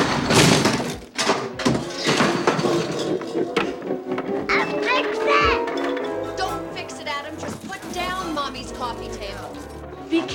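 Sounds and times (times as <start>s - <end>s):
heavy door dropped on living room floor: 0.0s - 6.4s
bangs and clatters: 0.0s - 8.6s
people shouting and talking excitedly: 4.5s - 6.9s.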